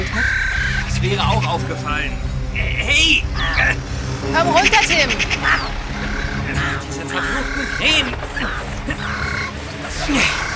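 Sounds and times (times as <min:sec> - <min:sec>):
crows cawing: 0:00.1 - 0:00.9, 0:03.2 - 0:03.9, 0:05.2 - 0:10.5
speech: 0:01.0 - 0:09.3, 0:10.0 - 0:10.5.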